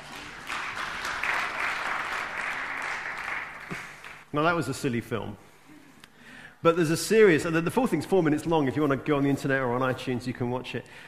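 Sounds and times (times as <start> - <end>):
audience applause: 0.0 - 4.3
speech: 4.3 - 5.5, 6.6 - 11.0.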